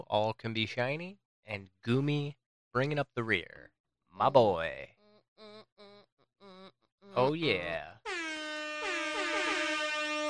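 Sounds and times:
speech: 0.1s - 5.5s, 7.1s - 8.2s
loud blaring air horn blasts: 8.0s - 10.2s.

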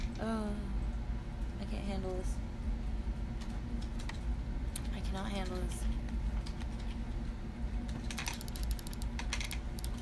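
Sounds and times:
low steady hum: 0.0s - 10.0s
speech: 1.7s - 2.5s, 5.1s - 6.1s
computer keyboard typing: 8.1s - 10.0s.

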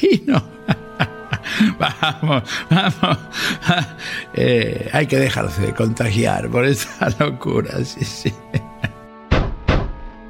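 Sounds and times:
speech: 0.0s - 0.7s, 1.8s - 8.7s
laughter: 0.0s - 4.0s, 8.0s - 9.0s
knocking on a door: 9.3s - 10.0s.

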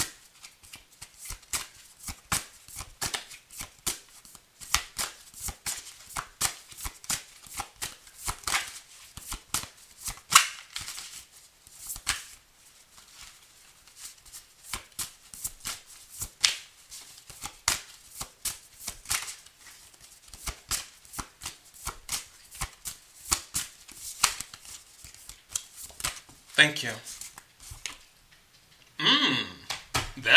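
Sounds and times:
tarot cards being shuffled: 0.0s - 28.1s
speech: 26.6s - 27.1s.

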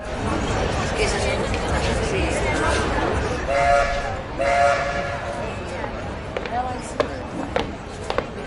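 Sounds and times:
indistinct voices at a railway station: 0.0s - 8.4s
train whistle blasts at a railway station: 3.5s - 5.3s.

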